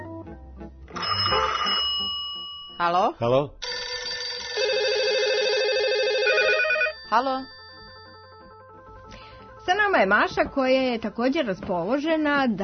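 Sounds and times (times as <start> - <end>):
loud buzzy telephone-style ring: 0.9 - 2.8, 3.6 - 9.1
speech: 2.8 - 3.6, 7.1 - 7.6, 10.0 - 12.6
bouncy musical jingle with bright synth notes and bass line: 3.6 - 9.1.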